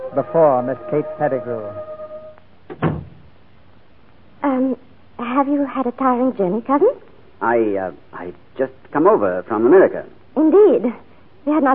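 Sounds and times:
speech: 0.1 - 1.9, 5.4 - 11.7
solid wooden door thunk: 2.7 - 3.2.

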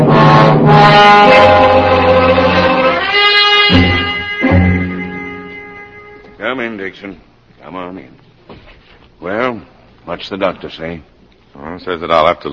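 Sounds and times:
police car sirens wailing: 0.1 - 5.2
speech: 10.2 - 12.4.

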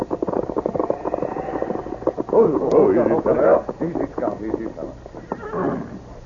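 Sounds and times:
horse hooves clopping: 0.0 - 6.0
horse whinnying: 0.6 - 2.4, 5.3 - 6.0
voices speaking: 0.9 - 5.0.

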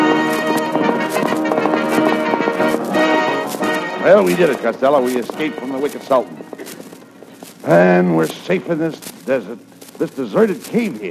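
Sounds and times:
full musical backing: 0.0 - 8.2
horse hooves clip-clopping: 0.0 - 11.1
speech: 4.1 - 6.8, 7.6 - 11.1.

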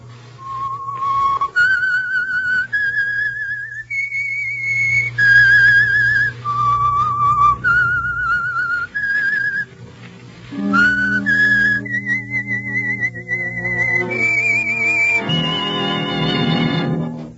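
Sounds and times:
lone whistler carrying a slow eerie melody of held notes: 0.4 - 9.7, 10.5 - 16.5
orchestral chords: 10.3 - 17.3.

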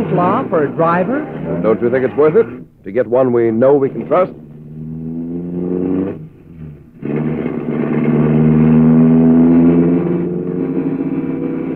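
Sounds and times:
car engine revving hard and accelerating: 0.0 - 11.7
speech: 0.1 - 4.4.

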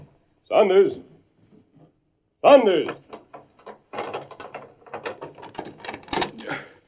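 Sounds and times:
speech: 0.6 - 1.1, 2.4 - 3.0
metallic latch mechanism clicking and rattling on a locked door: 2.9 - 6.4
key turning in a door lock: 3.9 - 6.4
bolt sliding back on a locked door: 5.2 - 6.4.

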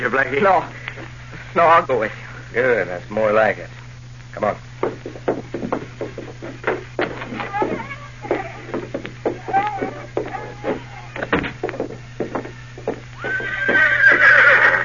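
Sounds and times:
speech: 0.0 - 5.4
faint low hum: 0.0 - 14.8
horse hooves clopping: 4.7 - 14.8
horse whinnying and neighing: 13.2 - 14.8.

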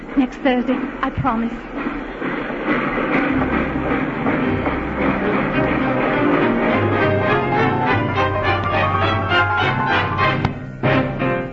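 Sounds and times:
dense clattering of train: 0.0 - 6.7
train rumbling: 0.0 - 11.4
speech: 0.2 - 2.8.

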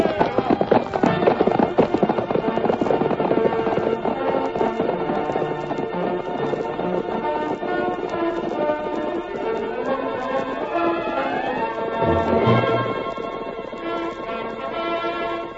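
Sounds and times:
galloping horse hoofbeats: 0.0 - 15.5
orchestral score: 11.3 - 14.8.

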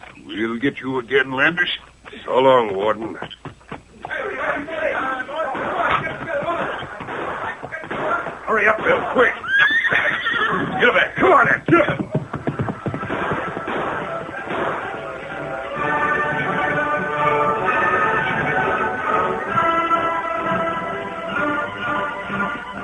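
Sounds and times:
horses galloping away into the hills: 0.0 - 22.8
speech: 0.3 - 3.6, 8.5 - 9.4
sustained musical tones: 12.6 - 22.8.

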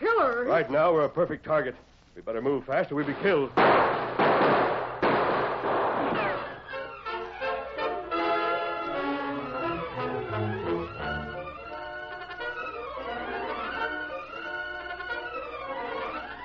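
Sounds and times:
speech: 0.0 - 4.8
gunshots from a gully: 3.1 - 6.8
sustained dramatic music with tonal swells: 6.2 - 15.7.

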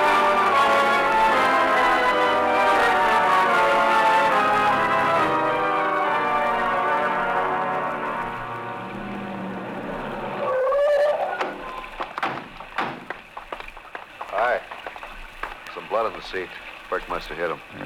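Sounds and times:
steady rain hissing and pattering: 0.0 - 17.8
low droning hum: 6.4 - 10.7
speech: 16.2 - 17.8.

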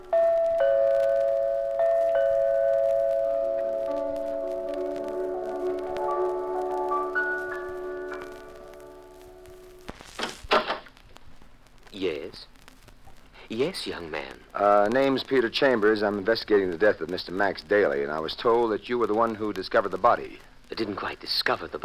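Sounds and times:
doorbell rung repeatedly: 0.1 - 8.2
speech: 13.6 - 21.8.

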